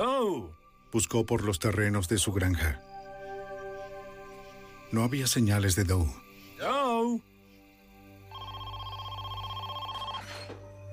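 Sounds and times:
speech: 0.0 - 2.9, 4.9 - 7.3
telephone ringing with a warbling electronic trill: 8.3 - 10.5.

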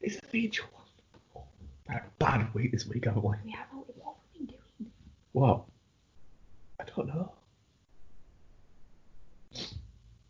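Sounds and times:
speech: 0.0 - 0.8, 1.9 - 3.7, 5.4 - 5.7
low noise: 0.0 - 10.2
person sniffing: 9.5 - 9.9.

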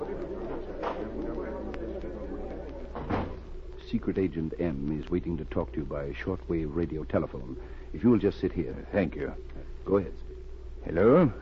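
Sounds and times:
faint murmuring: 0.0 - 11.4
low steady hum: 0.0 - 11.4
wooden door opening and closing: 2.9 - 3.5
speech: 3.9 - 11.4.

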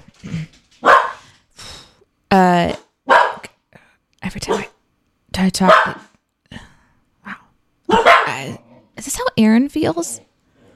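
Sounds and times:
dogs barking: 0.8 - 1.3, 3.1 - 3.5, 4.4 - 4.8, 5.6 - 6.2, 7.9 - 8.6
speech: 5.4 - 6.0, 9.4 - 10.3.

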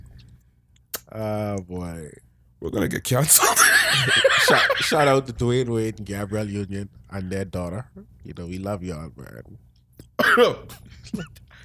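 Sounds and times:
speech: 1.1 - 11.6
deliberate voiced throaty cough: 3.1 - 4.3, 10.2 - 10.6
laughter: 3.1 - 5.1.

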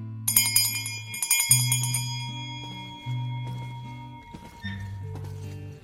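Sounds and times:
hand bell rung by a ticket seller in a metro station to announce an arriving draisine: 0.3 - 4.7.

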